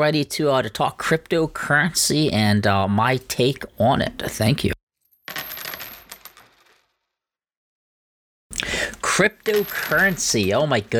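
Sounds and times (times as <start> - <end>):
person speaking excitedly: 0.0 - 4.8, 9.0 - 10.9
speech: 0.0 - 4.8, 9.2 - 10.9
coins spilling and clinking: 5.2 - 7.0, 9.1 - 10.8.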